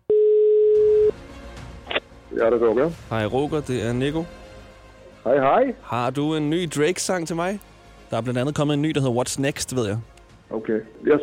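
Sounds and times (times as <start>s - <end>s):
ringback tone of an outgoing telephone call: 0.1s - 1.2s
speech: 2.4s - 4.4s, 5.2s - 11.2s.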